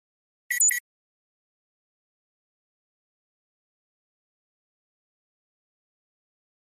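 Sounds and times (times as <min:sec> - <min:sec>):
beep: 0:00.5 - 0:00.8.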